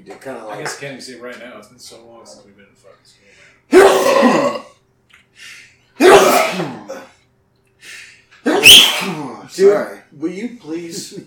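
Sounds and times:
speech: 0.0 - 4.8, 9.6 - 11.2
person sneezing: 3.7 - 4.7, 6.0 - 7.1, 8.4 - 9.4
quiet inhaling gasp: 7.8 - 8.4.

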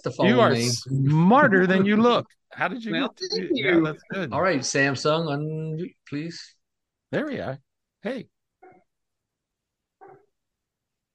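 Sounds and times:
speech: 0.0 - 8.3
faint dog barks next door: 10.0 - 10.4.

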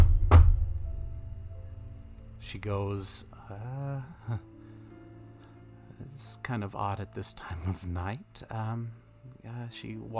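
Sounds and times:
loud abrupt knock on a front door: 0.0 - 0.8
speech: 2.4 - 4.5, 6.1 - 10.1.

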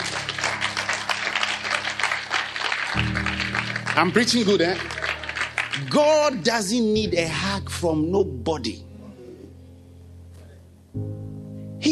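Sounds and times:
audience clapping hands: 0.0 - 6.8
speech: 4.0 - 5.0, 5.8 - 8.9.

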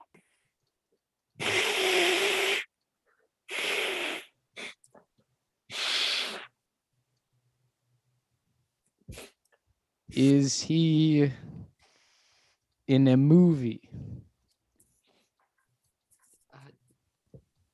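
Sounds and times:
long wet nose blowing: 1.4 - 2.7, 3.5 - 4.8, 5.7 - 6.6, 9.1 - 9.4
sniffs and snorts: 1.4 - 2.7, 3.5 - 4.8, 5.7 - 6.5, 9.1 - 9.4
speech: 10.2 - 11.5, 12.9 - 13.9.

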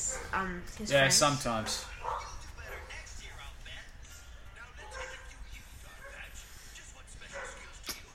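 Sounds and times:
dog barking in short yappy bursts: 0.0 - 0.4, 1.6 - 3.1, 4.8 - 6.3, 7.3 - 7.8
speech: 0.0 - 2.3.

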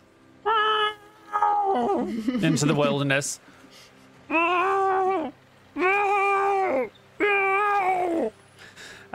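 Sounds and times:
person imitating a distressed cat howling: 0.4 - 2.1, 4.3 - 8.4
speech: 1.8 - 4.4.

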